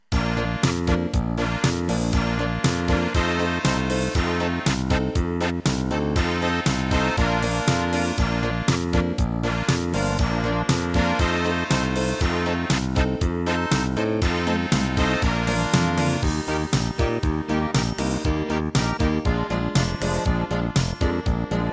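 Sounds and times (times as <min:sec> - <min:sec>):
pop polka music: 0:00.0 - 0:21.7.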